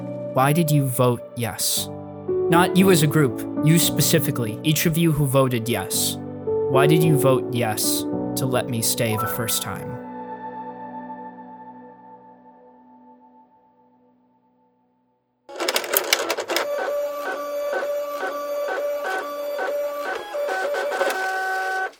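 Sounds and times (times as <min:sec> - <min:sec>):
speech: 0:00.4 - 0:09.9
fax machine printing out a statement: 0:15.5 - 0:21.9.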